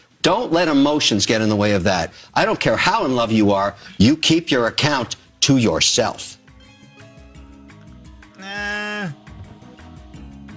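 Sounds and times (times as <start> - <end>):
speech: 0.2 - 6.4
person imitating a goat bleat: 8.4 - 9.3.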